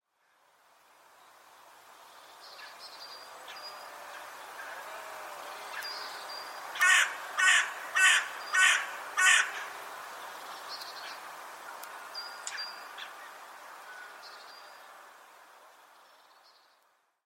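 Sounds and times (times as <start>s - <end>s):
faint background hiss: 0.0s - 17.2s
bird cawing: 6.8s - 9.8s.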